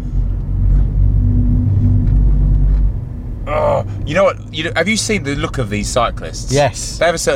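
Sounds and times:
car bumps and rattles on unpaved track: 0.0 - 6.4
car driving over rough unpaved track: 0.0 - 7.3
speech: 3.8 - 7.3.

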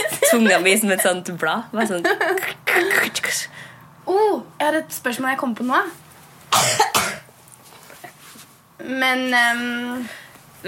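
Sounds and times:
speech: 0.3 - 7.2, 8.8 - 10.6
person with a dry throat clearing throat: 6.5 - 7.3.

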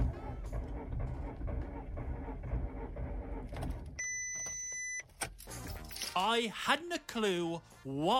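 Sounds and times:
2010 Golf car engine grinding while failing to start: 0.0 - 4.6
speech: 6.2 - 8.1.

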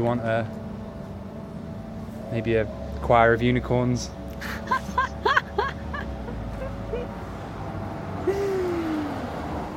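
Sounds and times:
speech: 0.0 - 0.6, 2.3 - 5.0
low rumble of street traffic: 0.0 - 9.7
laughter: 4.4 - 6.8.

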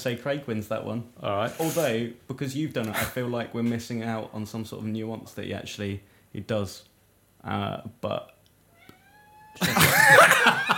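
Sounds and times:
speech: 0.0 - 8.4, 9.6 - 10.7
cat meowing: 8.7 - 9.8
laughter: 9.6 - 10.7.

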